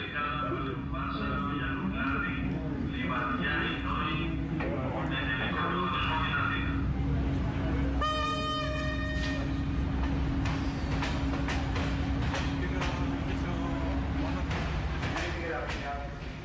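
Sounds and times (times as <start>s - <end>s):
slow passenger train running on rails: 0.0s - 16.4s
train horn-like tone: 8.0s - 9.6s.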